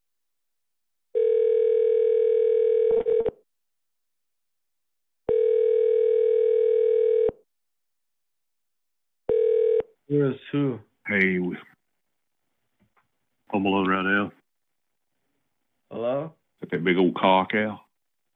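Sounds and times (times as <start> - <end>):
telephone ringback tone on an internet voice-service call: 1.2 - 3.3, 5.3 - 7.4, 9.3 - 9.8
speech: 10.1 - 11.7, 13.5 - 14.4, 15.9 - 17.8.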